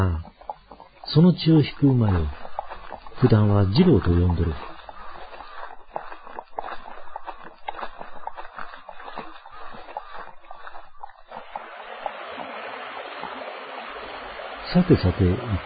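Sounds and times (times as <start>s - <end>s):
speech: 0.0s - 0.3s, 1.1s - 2.4s, 3.2s - 4.7s, 14.8s - 15.6s
small splashes and gurgles of river water: 0.3s - 15.6s
mountain river rushing past large rocks: 11.4s - 15.6s.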